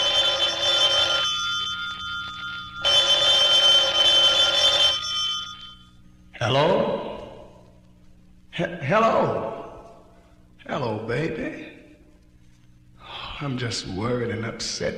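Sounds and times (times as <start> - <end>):
telephone ringing loudly: 0.0 - 7.6
speech: 6.5 - 6.9, 8.6 - 9.6, 10.8 - 11.7, 13.4 - 14.9.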